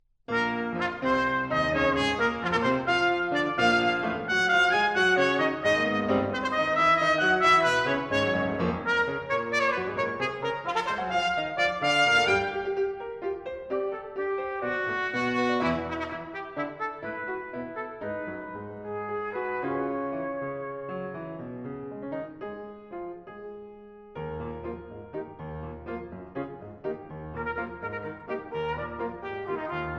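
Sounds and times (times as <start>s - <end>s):
trumpet in a fast energetic sonata: 0.3s - 21.5s, 27.3s - 29.9s
piano in a fast energetic sonata: 0.3s - 29.9s.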